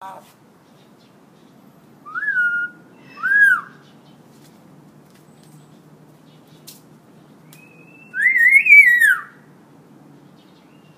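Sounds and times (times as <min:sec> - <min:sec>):
hill myna whistling: 0:02.1 - 0:03.7, 0:07.5 - 0:09.3.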